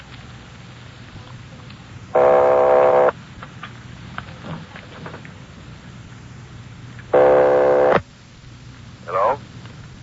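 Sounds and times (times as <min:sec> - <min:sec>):
low steady hum: 0:00.0 - 0:10.0
buzzy telephone ringing tones on the line: 0:02.2 - 0:03.1, 0:07.2 - 0:08.0.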